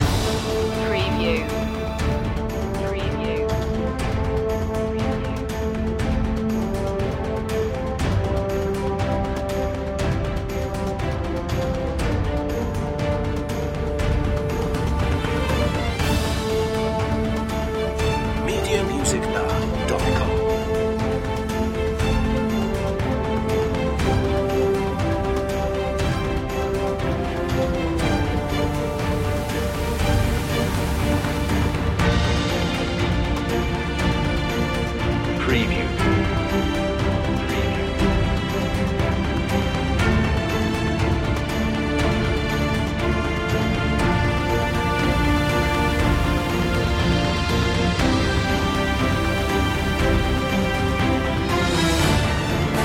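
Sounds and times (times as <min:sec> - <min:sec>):
orchestral music mix: 0:00.0 - 0:52.8.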